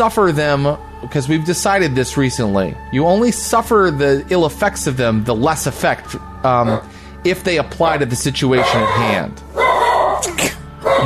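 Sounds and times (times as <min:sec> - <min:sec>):
speech: 0:00.0 - 0:09.4
dog barking: 0:06.6 - 0:06.9, 0:08.6 - 0:11.0.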